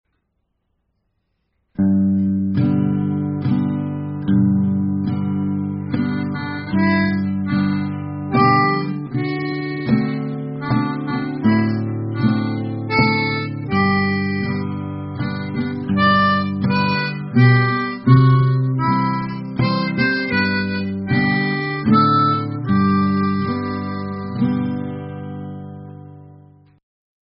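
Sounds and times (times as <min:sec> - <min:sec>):
high guitar: 0:01.8 - 0:26.8.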